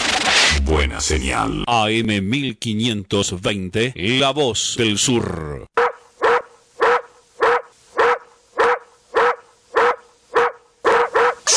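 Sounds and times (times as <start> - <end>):
speech: 0.8 - 5.8
dog barking: 5.8 - 11.5.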